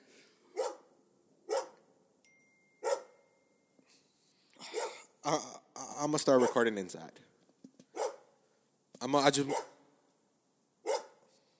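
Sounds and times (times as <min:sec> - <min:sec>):
dog barking in short sharp bursts: 0:00.5 - 0:00.9, 0:01.5 - 0:01.8, 0:02.8 - 0:03.2, 0:04.6 - 0:05.1, 0:06.3 - 0:06.7, 0:07.9 - 0:08.3, 0:09.5 - 0:09.8, 0:10.8 - 0:11.2
speech: 0:05.2 - 0:07.3, 0:09.0 - 0:09.7.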